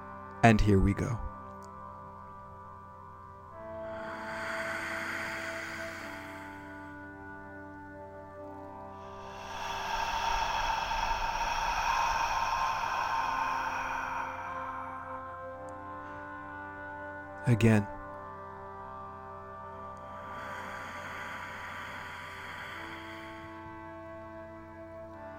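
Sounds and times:
speech: 0.4 - 1.3, 17.6 - 17.9
slow deep breaths in through the nose and out through the mouth: 3.5 - 17.4, 18.9 - 25.3.

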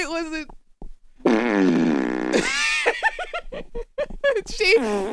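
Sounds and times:
speech: 0.2 - 0.6
voice imitating a bathtub fart: 1.2 - 2.7, 4.4 - 5.0.

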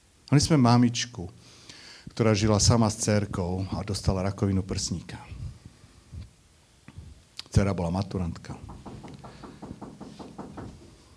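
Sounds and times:
speech: 0.3 - 1.4, 2.2 - 5.4, 7.6 - 8.8
firm knocks on a door: 8.6 - 11.0.

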